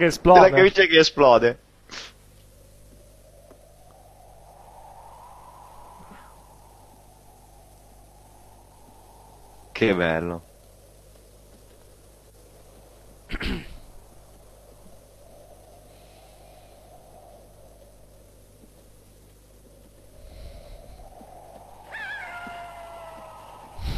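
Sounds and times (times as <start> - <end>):
speech: 0.0 - 2.1, 9.8 - 10.5, 13.3 - 13.7
steady hiss: 0.0 - 23.9
coyote howling: 21.6 - 23.9.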